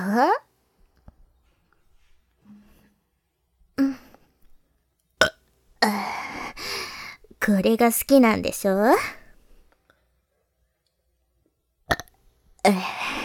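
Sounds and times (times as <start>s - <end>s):
speech: 0.1s - 0.5s, 7.4s - 9.2s, 12.6s - 13.0s
person burping close to the microphone: 11.9s - 13.2s.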